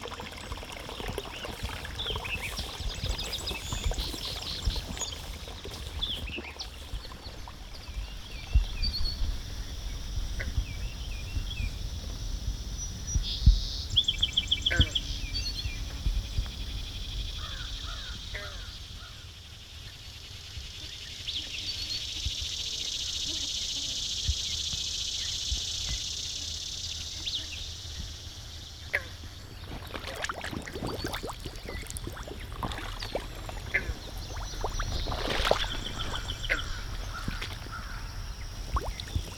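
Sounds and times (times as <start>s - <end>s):
footsteps sloshing through shallow freshwater wetland water in Blacksburg Virginia: 0.0s - 11.7s, 29.2s - 39.3s
insects buzzing: 0.0s - 39.3s.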